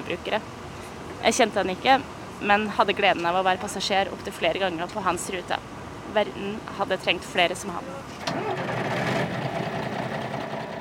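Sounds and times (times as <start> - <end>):
speech: 0.1 - 0.6, 1.2 - 8.8
bus engine starting up in the morning: 8.2 - 10.8.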